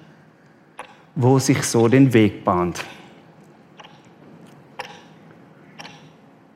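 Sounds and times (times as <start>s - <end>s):
clock ticking: 0.8s - 1.2s, 3.8s - 4.1s, 4.8s - 5.2s, 5.8s - 6.2s
speech: 1.2s - 3.0s.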